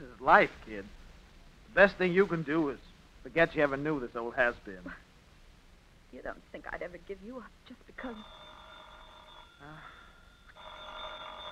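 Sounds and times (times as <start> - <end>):
speech: 0.2 - 1.0, 1.8 - 5.0, 6.1 - 8.4, 9.6 - 10.0
telephone ringing with a bright electric tone: 8.0 - 11.4.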